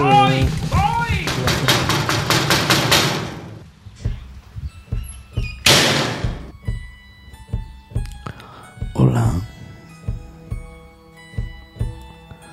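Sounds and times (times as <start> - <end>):
loud excited voices: 0.0 - 1.7
clatter: 0.0 - 6.6
knocking on a door: 0.6 - 3.4, 4.0 - 8.1, 11.4 - 12.0.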